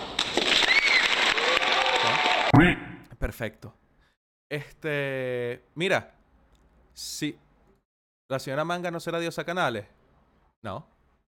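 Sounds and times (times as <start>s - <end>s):
crowd applause: 0.0s - 2.6s
speech: 2.6s - 3.8s, 4.5s - 6.2s, 7.0s - 7.4s, 8.3s - 10.0s, 10.6s - 10.9s.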